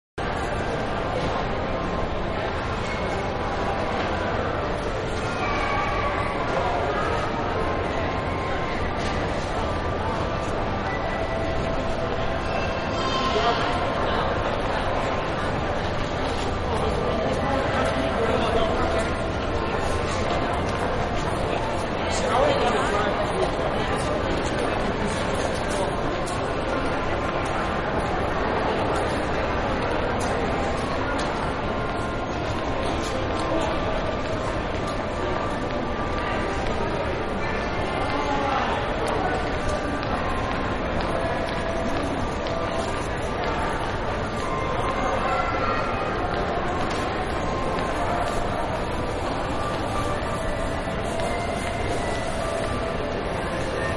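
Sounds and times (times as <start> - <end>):
shopping mall ambience: 0.2 - 53.9.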